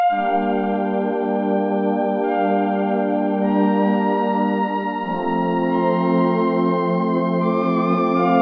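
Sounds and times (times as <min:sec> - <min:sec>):
cosmic synth voice: 0:00.1 - 0:08.4.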